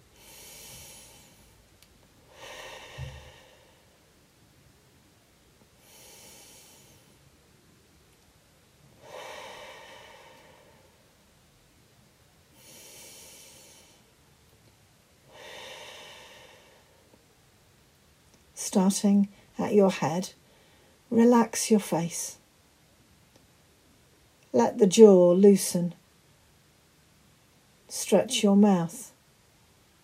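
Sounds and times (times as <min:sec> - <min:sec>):
slow deep breathing in through the nose and out through the mouth during a seated relaxation exercise: 0:00.1 - 0:04.1, 0:05.7 - 0:07.4, 0:09.0 - 0:11.2, 0:12.5 - 0:14.2, 0:15.3 - 0:17.2
speech: 0:18.6 - 0:20.4, 0:21.2 - 0:22.4, 0:24.6 - 0:26.0, 0:27.9 - 0:29.1.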